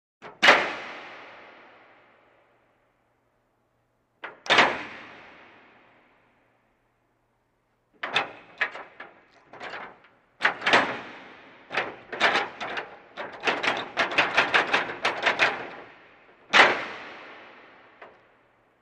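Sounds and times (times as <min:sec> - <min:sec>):
metal door opening and closing: 0:04.2 - 0:05.1, 0:08.0 - 0:17.0.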